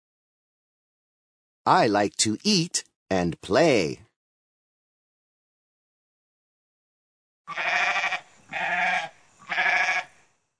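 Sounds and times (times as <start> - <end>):
speech: 1.6 - 4.0
goat bleating: 7.5 - 10.1.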